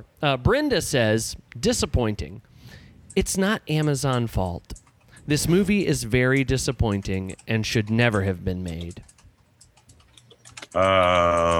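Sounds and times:
speech: 0:00.0 - 0:09.1, 0:10.7 - 0:11.5
typing on a keyboard: 0:03.8 - 0:11.5.

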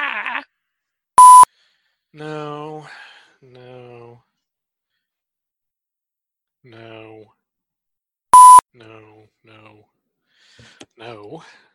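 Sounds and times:
sharp loud electronic beep: 0:01.2 - 0:01.5, 0:08.4 - 0:08.6
speech: 0:02.1 - 0:04.3, 0:06.6 - 0:07.4, 0:10.6 - 0:11.7.

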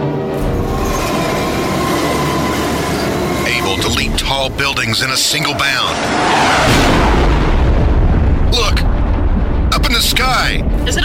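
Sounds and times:
moving locomotive train rumbling: 0:00.0 - 0:11.0
rail clatter: 0:00.3 - 0:07.0
speech: 0:03.8 - 0:07.3, 0:10.3 - 0:11.0.

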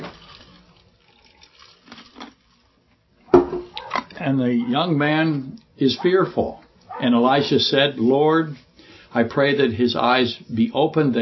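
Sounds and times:
water pouring in a splashy trickle: 0:00.0 - 0:02.7
speech: 0:04.2 - 0:11.2.

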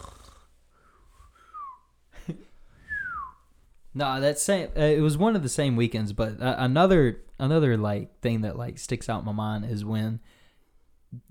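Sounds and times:
person imitating a snore with their voice: 0:00.0 - 0:00.5
thin descending whistle: 0:01.5 - 0:01.9, 0:02.8 - 0:03.4
speech: 0:04.0 - 0:10.4.

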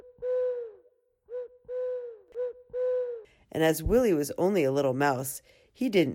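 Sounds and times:
owl hooting: 0:00.0 - 0:03.3
speech: 0:03.5 - 0:06.1.

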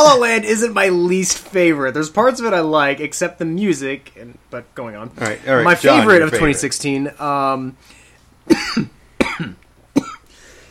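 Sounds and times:
speech: 0:00.0 - 0:09.6
harsh hacking coughs with gasp-like tails: 0:08.5 - 0:10.3.

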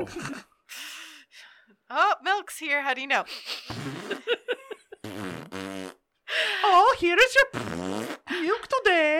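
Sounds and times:
speech: 0:00.0 - 0:00.5, 0:01.9 - 0:05.6, 0:06.4 - 0:09.1
loud sputtering fart noises: 0:03.7 - 0:04.3, 0:05.0 - 0:06.1, 0:07.4 - 0:08.3.

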